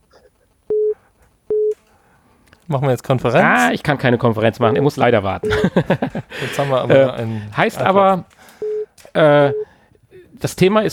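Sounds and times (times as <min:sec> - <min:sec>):
telephone incoming call alert beeps: 0:00.7 - 0:01.8, 0:08.6 - 0:09.7
speech: 0:02.7 - 0:08.6, 0:09.2 - 0:09.7, 0:10.4 - 0:10.9
laughter: 0:03.2 - 0:08.4.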